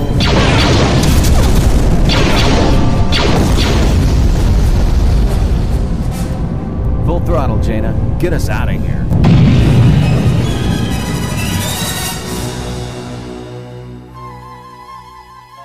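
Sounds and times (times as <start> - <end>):
explosion in a base hangar: 0.2 - 7.0, 9.0 - 13.3
speech: 8.2 - 9.6.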